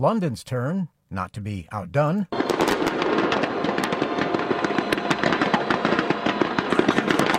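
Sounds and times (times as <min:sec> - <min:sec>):
speech: 0:00.0 - 0:02.8
fireworks display bursts and crackles: 0:02.3 - 0:07.3
rumbling wash of explosions: 0:02.4 - 0:07.3
sharp pops: 0:02.4 - 0:07.3.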